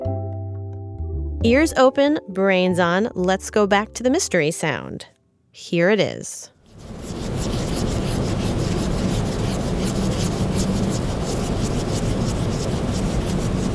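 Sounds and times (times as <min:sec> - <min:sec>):
speech: 0:01.4 - 0:07.0
cotton swab rubbing over a painting's surface to clean it: 0:06.6 - 0:13.7.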